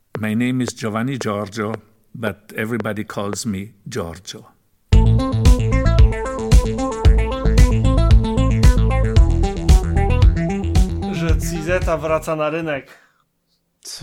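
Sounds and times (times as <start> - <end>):
speech: 0.2 - 4.6, 11.7 - 13.0, 13.8 - 14.0
instrumental music track with layered sustained notes over a driving beat: 4.9 - 12.3.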